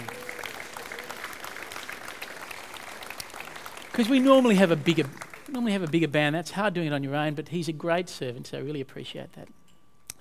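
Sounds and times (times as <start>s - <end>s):
audience applause: 0.0s - 6.4s
speech: 4.0s - 9.6s.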